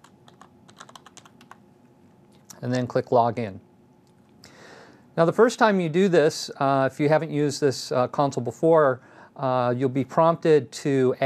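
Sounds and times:
quiet typing on a computer keyboard: 0.0s - 1.6s
speech: 2.6s - 3.7s, 5.2s - 11.2s.

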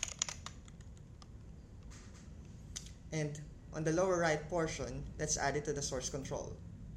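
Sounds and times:
light quick keystrokes on a computer keyboard typing a name: 0.0s - 1.3s
speech: 3.1s - 6.7s.

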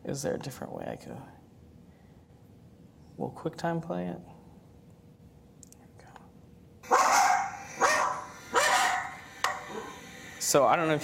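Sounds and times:
speech: 0.1s - 1.4s, 3.2s - 4.4s, 10.5s - 11.0s
two dogs barking excitedly: 6.8s - 10.0s.

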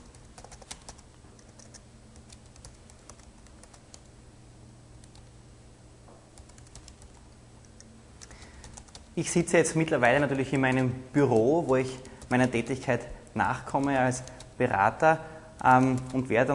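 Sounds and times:
typing a chat message on a computer keyboard: 0.0s - 4.1s, 5.0s - 5.3s, 6.4s - 9.1s, 10.6s - 12.7s, 13.6s - 14.6s, 15.6s - 16.3s
speech: 9.2s - 16.5s.

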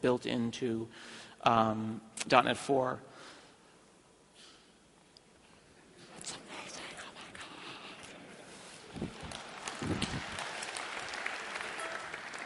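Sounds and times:
speech: 0.0s - 3.1s
sizable crowd applauding: 8.8s - 12.4s.

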